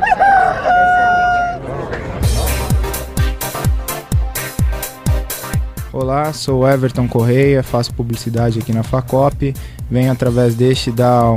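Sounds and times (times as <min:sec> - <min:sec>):
rooster crowing: 0:00.0 - 0:01.7
punchy steady electronic beat: 0:02.2 - 0:11.3
speech: 0:06.1 - 0:11.3.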